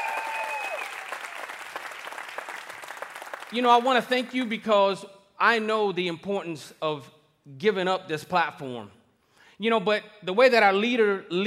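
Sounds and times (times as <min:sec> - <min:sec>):
church congregation applauding its lead pastors during a service: 0:00.0 - 0:04.4
speech: 0:03.5 - 0:09.0, 0:09.6 - 0:11.4.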